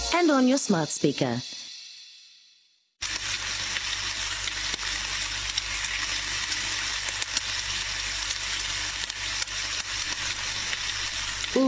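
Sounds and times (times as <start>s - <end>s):
speech: 0.2s - 1.6s
sausages sizzling in a hot pan: 3.0s - 11.6s.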